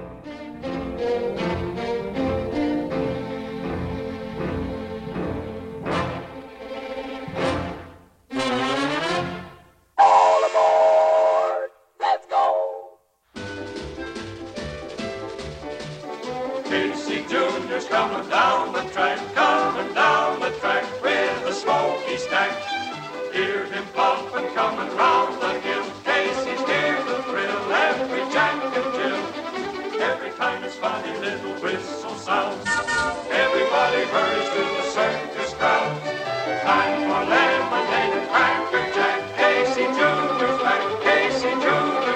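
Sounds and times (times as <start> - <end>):
bouncy upbeat orchestral song about a circus train: 0.0 - 11.7, 13.4 - 42.1
train whistle blasts: 10.0 - 11.7, 32.6 - 33.3.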